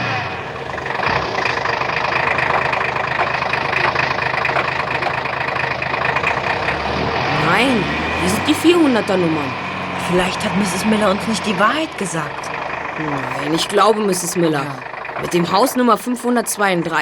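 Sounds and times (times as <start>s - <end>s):
car engine humming as the car drives slowly along a street: 0.0s - 17.0s
road noise from a car driving slowly along a street: 0.0s - 17.0s
speech: 7.6s - 17.0s.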